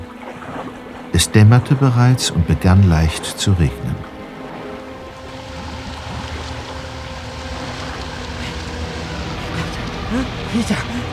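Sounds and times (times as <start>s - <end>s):
motorboat engine droning across open water: 0.0s - 11.1s
speech: 0.6s - 4.1s, 10.2s - 11.1s
water wash and spray: 4.3s - 11.1s.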